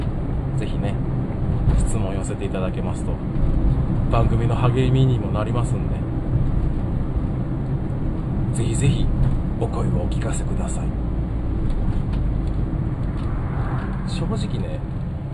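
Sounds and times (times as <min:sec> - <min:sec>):
steady low road rumble in a car cabin while driving: 0:00.0 - 0:15.3
speech: 0:00.6 - 0:01.1, 0:01.8 - 0:06.0, 0:08.6 - 0:11.0, 0:14.1 - 0:14.9.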